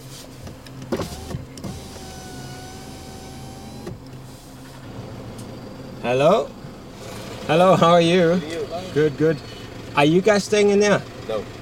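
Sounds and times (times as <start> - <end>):
power window whirring down: 0.4 - 5.6
pickup truck idling on gravel road: 0.6 - 11.6
speech: 6.0 - 6.6, 7.5 - 11.6.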